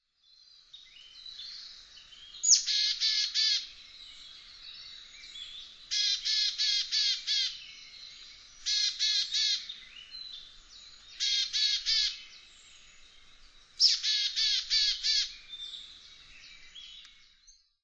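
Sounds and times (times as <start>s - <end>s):
willow tit calling: 2.4s - 3.7s, 4.6s - 12.4s, 13.8s - 17.2s.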